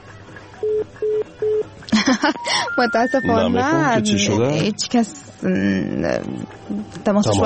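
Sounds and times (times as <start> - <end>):
speech: 0.8 - 7.4
telephone keypad beeps dialing a number: 2.4 - 3.4.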